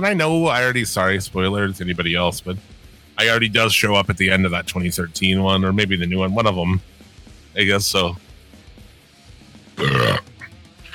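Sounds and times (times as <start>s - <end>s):
speech: 0.0s - 6.9s, 7.6s - 8.3s
person belching after drinking Coca-Cola: 9.8s - 10.9s.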